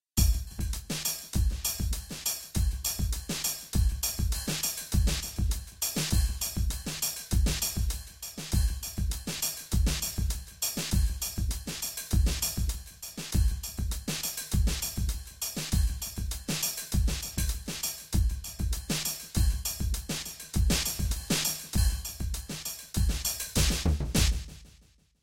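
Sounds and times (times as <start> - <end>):
Goa drum set playing: 0.2 - 24.7.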